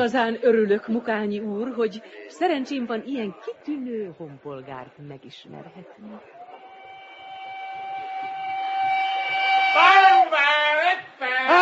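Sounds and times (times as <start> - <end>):
speech: 0.0 - 6.4, 11.4 - 11.6
raised voices: 5.6 - 11.6
train whistle blast of an arriving train: 6.6 - 10.9.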